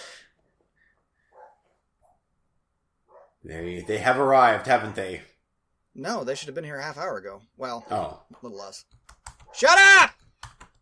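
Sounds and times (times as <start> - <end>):
dogs barking and yipping: 1.3 - 2.2, 3.1 - 4.2, 7.7 - 8.2
speech: 3.4 - 5.3, 6.0 - 10.2.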